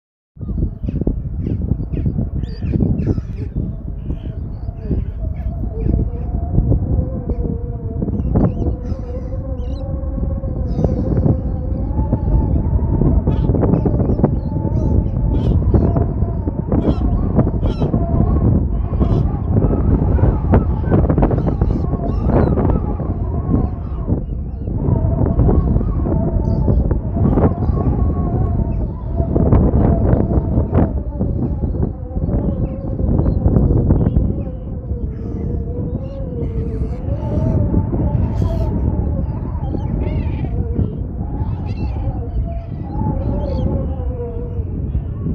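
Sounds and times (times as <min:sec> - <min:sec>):
wind whistling: 0:00.4 - 0:45.3.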